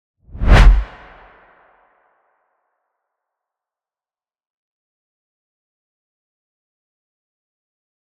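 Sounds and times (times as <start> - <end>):
vortex whoosh: 0.3 - 1.4.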